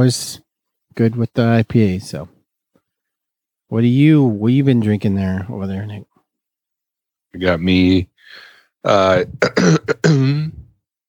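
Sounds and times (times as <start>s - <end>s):
speech: 0.0s - 0.4s, 1.0s - 2.4s, 3.7s - 6.1s, 7.3s - 10.6s
man clearing his throat: 9.2s - 10.7s.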